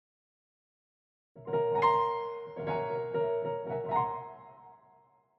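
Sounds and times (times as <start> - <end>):
piano: 1.4 - 5.3.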